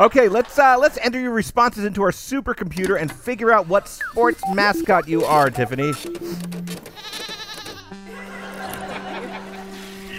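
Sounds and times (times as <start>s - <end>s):
speech: 0.0s - 6.6s
steady electronic humming tone: 4.4s - 7.1s
sheep bleating: 7.0s - 8.0s
laughter: 8.1s - 10.1s.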